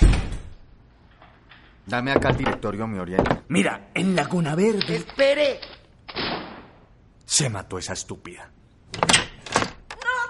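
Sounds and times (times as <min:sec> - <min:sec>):
door rattling and creaking as it settles: 0:01.2 - 0:03.5, 0:08.9 - 0:10.0
speech: 0:01.9 - 0:05.7, 0:07.3 - 0:09.1.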